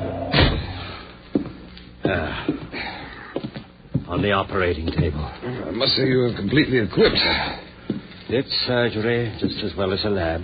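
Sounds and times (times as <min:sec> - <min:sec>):
door kicked shut with a heavy slam: 0:00.3 - 0:00.8
speech: 0:02.1 - 0:02.9, 0:04.1 - 0:07.6, 0:08.3 - 0:10.4.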